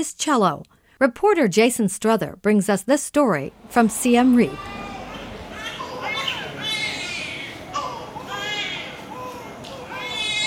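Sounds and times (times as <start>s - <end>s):
speech: 0.0s - 4.8s
busy crowded hospital room murmuring: 3.5s - 10.2s
several infants screaming and wailing in a hospital ward: 3.6s - 10.4s.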